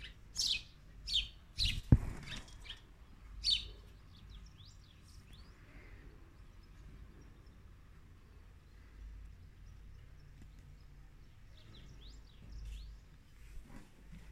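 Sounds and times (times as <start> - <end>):
birds chirping at a window: 0.0 - 13.5.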